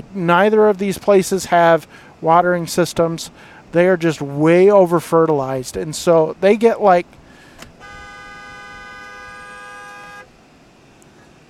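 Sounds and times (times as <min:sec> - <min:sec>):
speech: 0:00.0 - 0:07.2
low road noise: 0:00.0 - 0:11.4
car horn honking at a box truck pulling out: 0:07.8 - 0:10.4.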